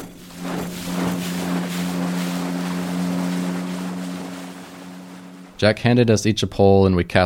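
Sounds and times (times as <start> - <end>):
water splashing as a boat moves across a lake: 0.0 - 5.8
small motorboat engine droning on a lake: 0.0 - 6.1
speech: 5.6 - 7.2.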